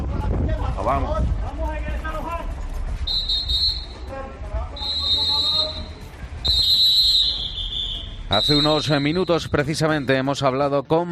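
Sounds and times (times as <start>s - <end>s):
voices and outdoor commotion: 0.0s - 11.1s
speech: 0.8s - 1.4s, 8.3s - 11.1s
shrill whistle blasts warning residents during evacuation: 3.0s - 4.1s, 4.8s - 9.8s.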